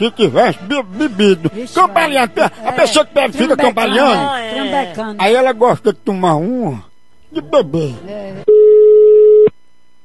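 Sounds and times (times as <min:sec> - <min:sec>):
laughter: 0:00.0 - 0:05.0
speech: 0:00.0 - 0:08.5
telephone call ringing tone beep: 0:08.5 - 0:09.5.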